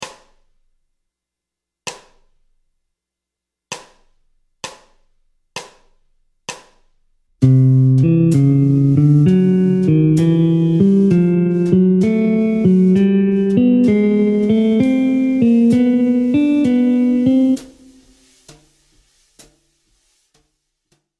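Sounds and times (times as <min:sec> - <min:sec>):
jazz guitar playing an ascending bebop scale in C Lydian: 0:07.4 - 0:18.0.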